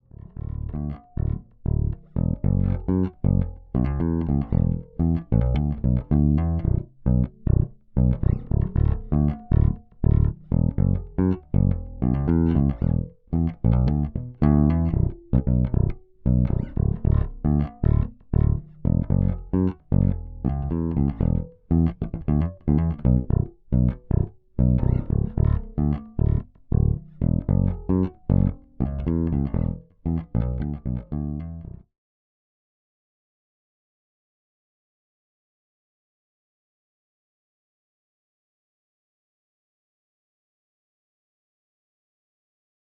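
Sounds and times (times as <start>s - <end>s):
bass recorded through a DI box: 0.0s - 31.9s.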